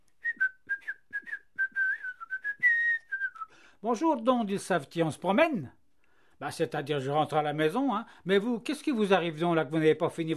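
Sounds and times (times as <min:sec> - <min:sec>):
white-haired cobbler whistling a lively bouncy tune: 0:00.2 - 0:03.7
speech: 0:03.8 - 0:05.8, 0:06.4 - 0:10.3.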